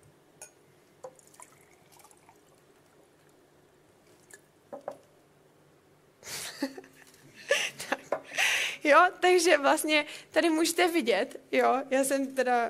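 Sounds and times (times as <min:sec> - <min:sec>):
water poured from a glass into a bottle: 0:01.1 - 0:03.3
speech: 0:08.9 - 0:12.6.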